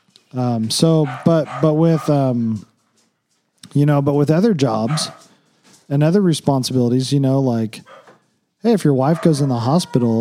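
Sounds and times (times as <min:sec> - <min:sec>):
speech: 0:00.3 - 0:02.7, 0:03.7 - 0:05.3, 0:05.9 - 0:08.0, 0:08.6 - 0:10.1
dog barking with whiny yodeling vocal barks: 0:00.9 - 0:02.3, 0:04.8 - 0:05.4, 0:07.8 - 0:08.2, 0:09.0 - 0:10.1.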